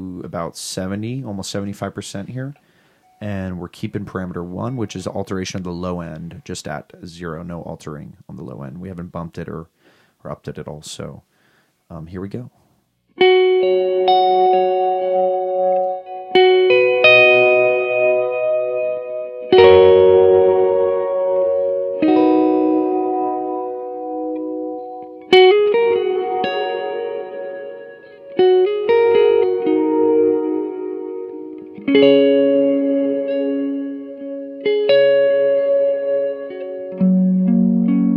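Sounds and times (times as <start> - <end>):
speech: 0.3 - 11.3, 11.9 - 12.6, 13.2 - 14.6
solo instrument playing slow chords through reverb effect: 13.2 - 38.1.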